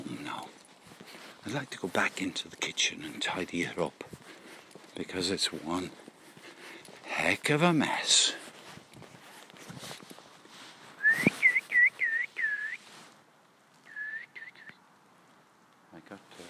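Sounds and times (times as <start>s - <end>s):
breathy whispery sounds: 0.0s - 11.4s
speech: 1.5s - 4.2s, 5.0s - 6.0s, 7.2s - 8.4s
person whistling with lips: 11.0s - 12.8s, 13.9s - 14.8s.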